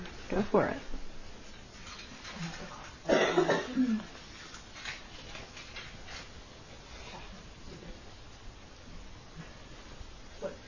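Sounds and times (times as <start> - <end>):
faint noise: 0.0 - 10.6
speech: 0.3 - 1.0
person with a scratchy throat from allergies coughing: 3.1 - 4.0.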